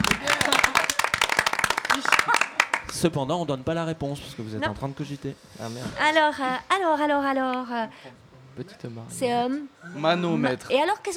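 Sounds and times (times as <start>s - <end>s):
audience applauding: 0.0s - 3.0s
speech: 3.0s - 11.1s.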